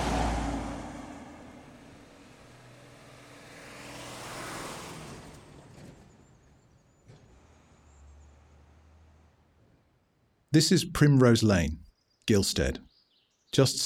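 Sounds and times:
car sweeping by: 0:00.0 - 0:10.0
road traffic rushing past: 0:00.0 - 0:12.8
speech: 0:10.5 - 0:12.9, 0:13.5 - 0:13.8.

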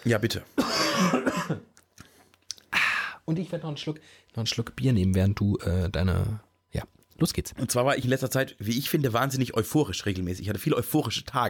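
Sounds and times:
speech: 0:00.0 - 0:01.7, 0:03.3 - 0:11.4
harsh throaty cough: 0:00.6 - 0:01.7
quiet breaths: 0:01.9 - 0:04.4.

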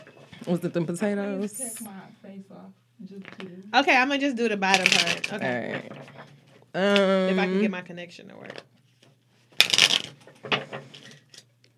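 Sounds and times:
speech: 0:00.4 - 0:08.7
deck of cards shuffling: 0:04.7 - 0:07.0, 0:08.4 - 0:11.5.

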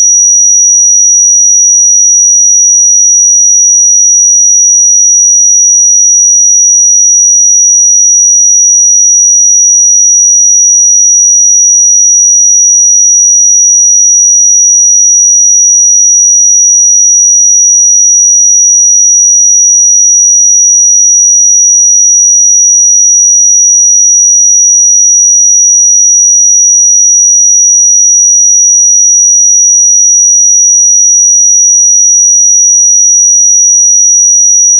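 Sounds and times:
pure 5801 Hz sine tone: 0:00.0 - 0:34.7.

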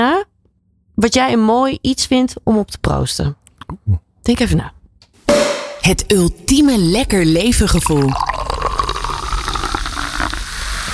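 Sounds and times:
speech: 0:01.0 - 0:08.3
water pouring into a glass: 0:07.4 - 0:10.9.

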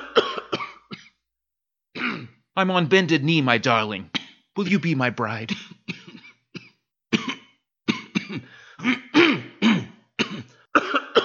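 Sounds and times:
person clearing throat: 0:00.0 - 0:01.2, 0:02.0 - 0:02.4, 0:05.5 - 0:11.2
person coughing: 0:00.0 - 0:01.2, 0:02.0 - 0:02.4, 0:05.5 - 0:11.2
speech: 0:02.6 - 0:05.7.

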